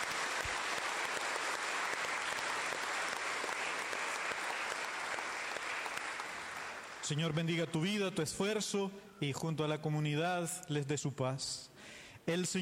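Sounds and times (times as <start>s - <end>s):
congregation applauding: 0.0s - 7.6s
speech: 7.1s - 12.5s.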